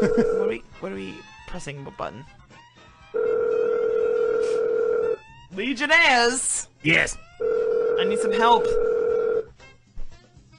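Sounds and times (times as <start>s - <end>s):
telephone ringtone over the line: 0.0s - 0.6s, 3.2s - 5.2s, 7.4s - 9.5s
speech: 0.0s - 2.6s, 5.5s - 7.3s, 8.0s - 9.0s.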